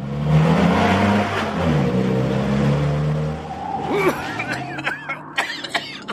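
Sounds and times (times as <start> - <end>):
car engine roaring: 0.0 - 6.1
coughing or throat clearing: 3.9 - 6.1.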